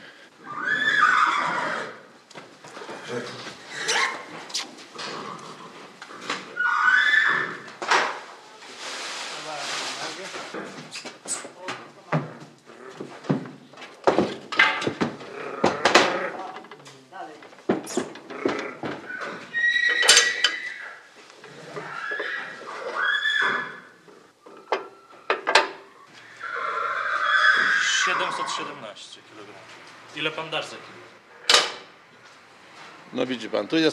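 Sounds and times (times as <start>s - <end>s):
mare whinnying on a scale: 0.4s - 2.1s, 3.6s - 7.8s, 15.2s - 16.5s, 17.9s - 28.8s
mare hooves clopping on a hard floor: 2.2s - 6.6s, 10.3s - 16.8s, 17.4s - 23.0s
speech: 33.2s - 33.9s.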